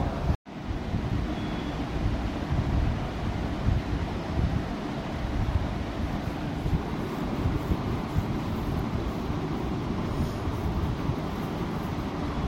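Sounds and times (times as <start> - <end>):
stormy wind over rough sea: 0.0 - 12.4
churning surf of stormy sea: 4.7 - 12.4.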